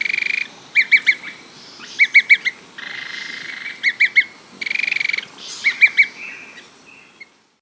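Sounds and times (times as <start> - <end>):
bird chirping: 0.0 - 7.4
faint background hiss: 0.0 - 7.6.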